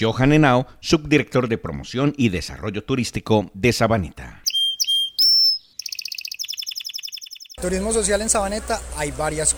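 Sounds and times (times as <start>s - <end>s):
speech: 0.0s - 4.4s, 7.6s - 9.5s
several birds singing in a nature reserve: 4.5s - 8.9s.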